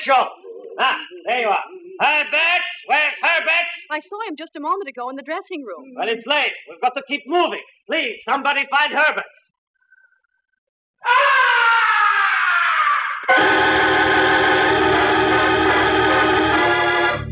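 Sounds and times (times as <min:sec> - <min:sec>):
speech: 0:00.0 - 0:09.4
blood-curdling scream from high above the stage of an opera house: 0:11.0 - 0:17.2.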